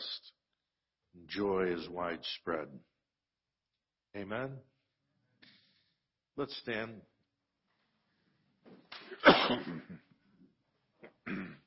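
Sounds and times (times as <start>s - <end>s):
speech: 1.3s - 2.9s, 4.1s - 4.7s, 6.4s - 7.1s, 8.7s - 10.1s, 11.3s - 11.6s
person coughing harshly from incense smoke: 9.1s - 10.1s, 11.2s - 11.6s.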